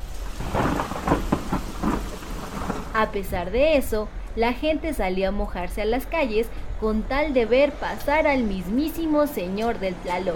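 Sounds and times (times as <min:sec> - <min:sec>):
heavy rain pouring down in Mexico City: 0:00.0 - 0:03.9
deep rumbles of thunder: 0:00.0 - 0:06.0
speech: 0:03.0 - 0:10.3.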